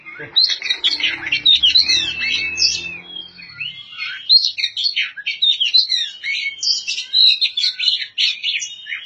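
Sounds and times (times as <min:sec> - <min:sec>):
faint low hum: 0:00.0 - 0:04.2
Oriental magpie-robin song: 0:00.0 - 0:09.0.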